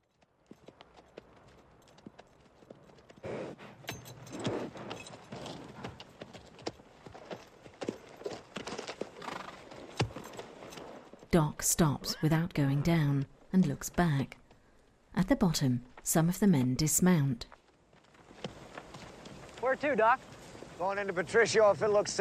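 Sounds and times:
faint jingling of horse tack: 0.0s - 11.3s
several horses' hooves thudding and clattering downhill: 0.0s - 11.3s, 17.4s - 22.1s
speech: 11.3s - 14.4s, 15.2s - 17.6s, 19.7s - 22.1s.

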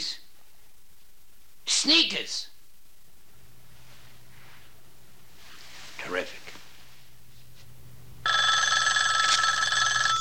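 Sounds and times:
speech: 1.8s - 2.5s
telephone bell ringing: 8.2s - 10.1s.

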